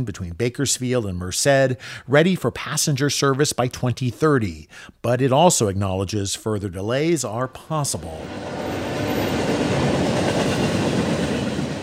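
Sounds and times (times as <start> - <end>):
speech: 0.0 - 10.1
slow-moving freight train rolling on tracks: 7.8 - 11.8.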